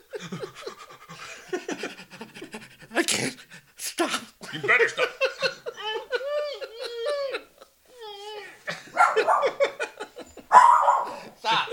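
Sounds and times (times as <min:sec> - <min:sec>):
laughter: 0:00.0 - 0:02.9, 0:04.4 - 0:07.8, 0:08.6 - 0:11.7
dog barking: 0:08.9 - 0:09.8, 0:10.5 - 0:11.3
dog yelping: 0:09.0 - 0:09.6, 0:10.5 - 0:11.2.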